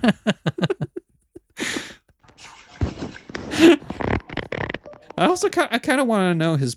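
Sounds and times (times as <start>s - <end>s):
laughter: 0.0s - 1.9s, 2.9s - 4.0s
fart: 2.4s - 4.9s
speech: 5.4s - 6.7s.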